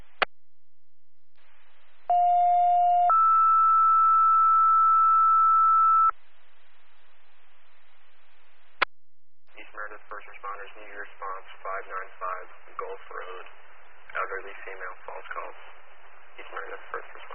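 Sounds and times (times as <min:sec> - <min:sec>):
two-tone fire dispatch alert page for first responders: 0:02.1 - 0:06.1.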